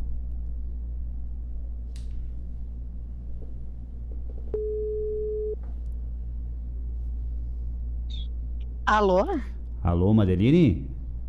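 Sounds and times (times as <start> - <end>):
constant low rumbling hum: 0.0 - 11.2
steady telephone line tone after a dropped call: 4.6 - 5.6
speech: 8.9 - 11.0.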